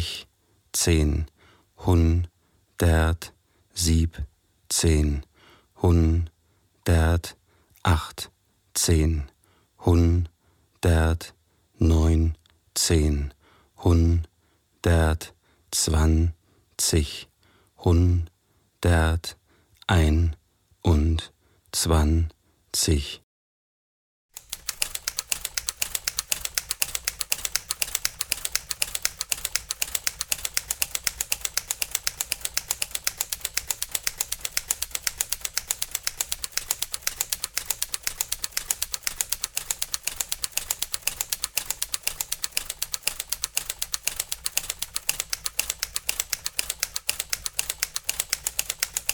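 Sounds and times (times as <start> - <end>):
speech: 0.7 - 6.3, 6.9 - 23.2
rapid typewriter typing: 24.4 - 49.1.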